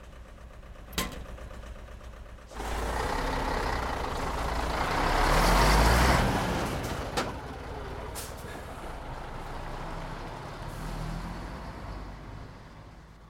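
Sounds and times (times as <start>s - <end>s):
heavy truck engine with calf loaded starting and rumbling: 0.0s - 13.2s
sharp clunk: 0.9s - 1.4s.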